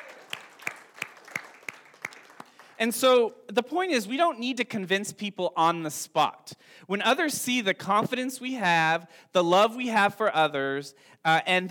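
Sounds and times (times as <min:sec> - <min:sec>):
audience applauding: 0:00.0 - 0:02.9
speech: 0:02.8 - 0:11.6.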